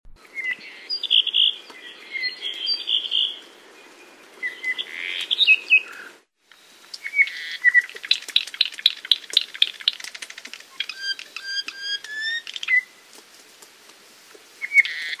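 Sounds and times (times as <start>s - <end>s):
Apapane singing varied whistled phrases and warbles: 0.2s - 6.1s, 6.9s - 10.1s, 10.7s - 13.0s, 14.6s - 15.1s.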